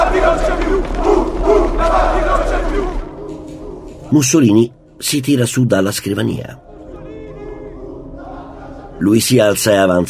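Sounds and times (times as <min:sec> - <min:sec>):
large crowd cheering outside a newspaper office: 0:00.0 - 0:03.2
speech: 0:04.1 - 0:06.7, 0:09.0 - 0:10.0.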